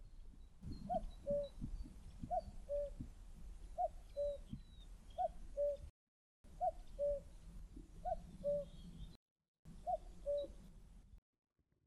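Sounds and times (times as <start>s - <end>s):
common cuckoo calling at a nature park in Essex: 0.7s - 1.6s, 2.3s - 3.0s, 3.8s - 5.9s, 6.6s - 7.3s, 8.1s - 8.8s, 9.9s - 10.5s.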